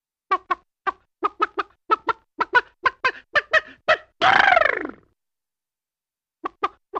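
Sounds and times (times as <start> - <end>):
chicken clucking: 0.3 - 4.1
chicken harsh squawk: 0.3 - 5.0.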